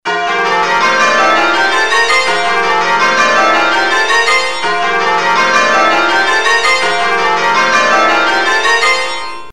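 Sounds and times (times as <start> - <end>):
church bells change ringing back rounds: 0.1 - 9.5.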